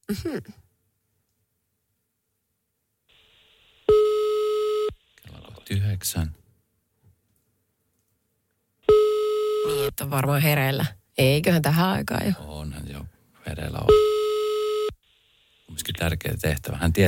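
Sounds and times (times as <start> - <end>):
speech: 0.1 - 0.7, 5.7 - 6.4, 9.9 - 14.1, 15.7 - 17.0
telephone ringback tone from a call to a phone in Finland: 3.9 - 4.9, 8.9 - 9.9.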